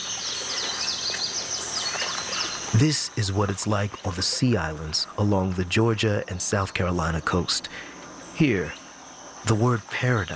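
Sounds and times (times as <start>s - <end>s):
birds chirping on a lush sea island with giant oaks, salt marshes and lagoons: 0.0s - 10.3s
steady hissing background: 0.0s - 10.3s
speech: 2.7s - 8.8s, 9.4s - 10.3s.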